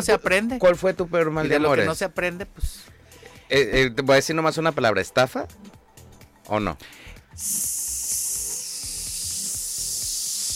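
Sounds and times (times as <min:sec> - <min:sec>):
speech: 0:00.0 - 0:05.8, 0:06.4 - 0:07.8
balloon deflating with rubber flutter: 0:07.4 - 0:10.5.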